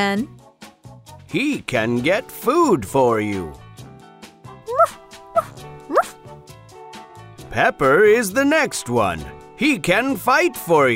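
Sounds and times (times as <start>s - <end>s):
speech: 0.0s - 0.4s, 1.3s - 3.6s, 7.6s - 10.9s
faint steady musical background: 0.0s - 10.9s
small dog giving high-pitched yapping barks: 4.7s - 6.2s.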